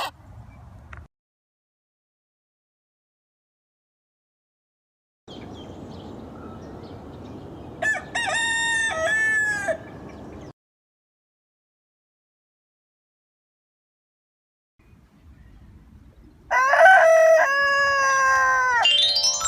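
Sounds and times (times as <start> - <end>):
rooster crowing: 7.8 - 9.8, 16.5 - 18.9.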